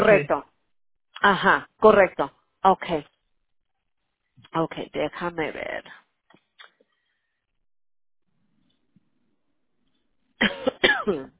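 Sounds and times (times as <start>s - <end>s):
speech: 0.0s - 0.5s, 1.2s - 3.1s, 4.5s - 6.0s, 10.4s - 11.3s
person coughing harshly: 10.4s - 11.3s.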